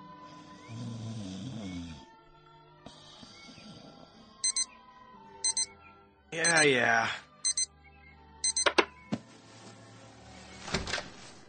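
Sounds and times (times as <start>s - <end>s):
alarm clock snooze alarm beeping: 4.4s - 4.7s, 5.4s - 5.7s, 6.4s - 6.8s, 7.4s - 7.7s, 8.4s - 8.8s
speech: 6.4s - 7.2s
soft rustling movement: 9.2s - 11.4s.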